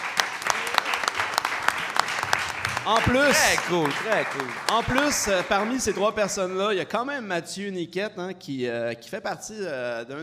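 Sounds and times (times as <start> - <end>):
applause: 0.0 - 6.6
speech: 2.8 - 10.2.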